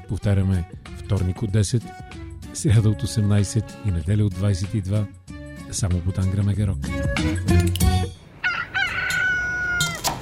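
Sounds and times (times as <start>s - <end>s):
speech: 0.1s - 8.2s
rooster crowing: 8.4s - 10.1s.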